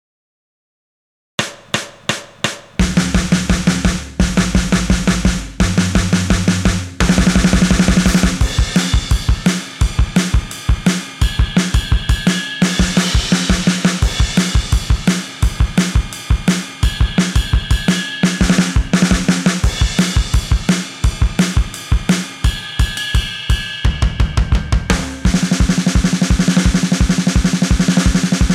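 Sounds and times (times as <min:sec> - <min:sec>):
drums: 0:01.4 - 0:28.5.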